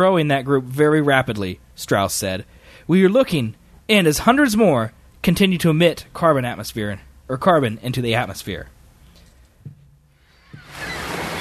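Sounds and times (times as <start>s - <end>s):
speech: 0.0s - 8.8s
soft thuds: 9.6s - 10.7s
ocean waves surging: 10.6s - 11.3s.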